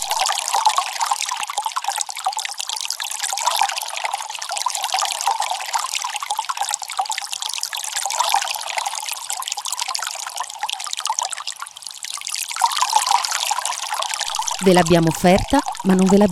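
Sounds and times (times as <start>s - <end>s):
water trickling and pouring: 0.0s - 16.3s
speech: 14.6s - 16.3s.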